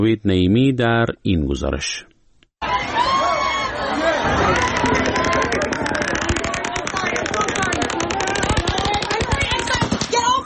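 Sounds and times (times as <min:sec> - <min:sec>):
speech: 0:00.0 - 0:02.1, 0:04.0 - 0:05.1
faint concert crowd noise: 0:02.6 - 0:10.4
rapid automatic gunfire from a hotel floor onto a concert crowd in Las Vegas: 0:04.2 - 0:10.2.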